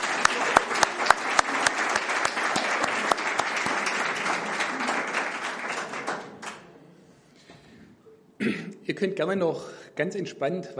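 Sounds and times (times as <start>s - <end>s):
audience applause: 0.0s - 6.8s
speech: 9.0s - 10.7s.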